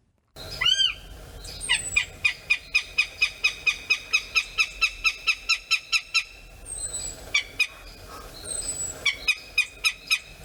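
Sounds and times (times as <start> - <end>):
thinner northern goshawk calls: 0.4 - 10.4.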